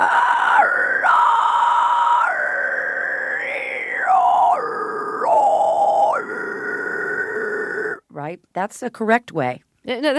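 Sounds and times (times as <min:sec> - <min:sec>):
person's high-pitched animal-like vocal shriek: 0:00.0 - 0:08.0
speech: 0:08.3 - 0:10.1.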